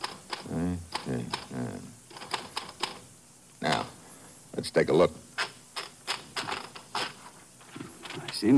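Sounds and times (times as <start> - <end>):
manual typewriter typing on a sheet of paper: 0.0 - 1.5, 2.1 - 3.0, 5.4 - 8.4
speech: 4.6 - 5.4, 8.4 - 8.5.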